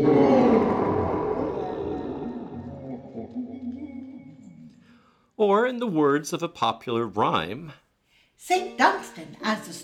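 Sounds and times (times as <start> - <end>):
deep loud bellowing roar with throaty growl: 0.0 - 4.7
speech: 5.4 - 7.8, 8.4 - 9.8.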